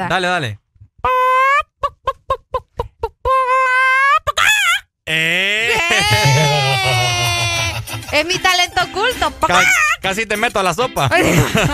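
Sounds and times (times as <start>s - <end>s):
speech: 0.0s - 0.6s, 5.1s - 5.4s, 8.2s - 11.7s
person imitating a clucking hen: 1.0s - 7.8s
laughter: 5.2s - 9.9s, 11.1s - 11.7s.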